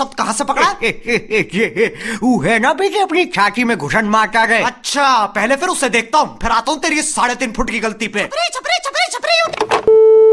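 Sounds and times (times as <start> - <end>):
speech: 0.0 - 9.7
disconnected phone call busy tone: 9.8 - 10.3.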